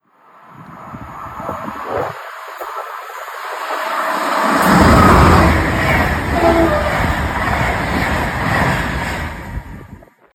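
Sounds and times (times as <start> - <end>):
class EB Eurocity train passing in Marslev: 0.0 - 10.3
class EB locomotive typhon horn in Marslev: 4.6 - 7.4.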